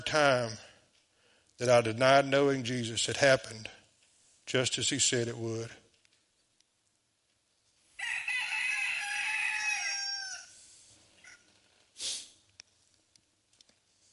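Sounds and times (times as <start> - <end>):
speech: 0.1 - 0.7, 1.6 - 3.8, 4.5 - 5.8
rooster crowing: 8.0 - 10.6.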